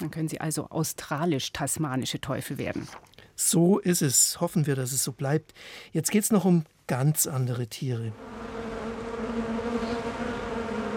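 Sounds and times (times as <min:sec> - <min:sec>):
speech: 0:00.0 - 0:08.5
swarm of many bees buzzing: 0:08.1 - 0:10.9.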